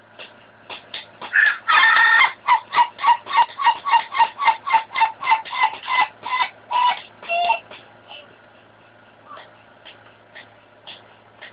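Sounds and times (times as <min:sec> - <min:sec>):
Ayam Ketawa chicken crowing in laugh-like syllables: 0:01.3 - 0:07.6.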